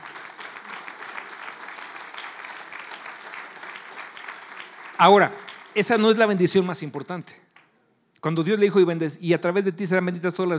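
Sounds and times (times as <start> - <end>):
large crowd clapping: 0.0 - 7.8
speech: 5.0 - 7.4, 8.2 - 10.5.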